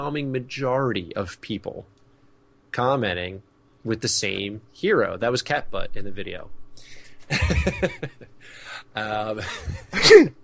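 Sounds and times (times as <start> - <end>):
speech: 0.0 - 2.0, 2.7 - 10.4
laughter: 7.3 - 8.3, 9.3 - 10.1
loud sneeze: 9.9 - 10.4.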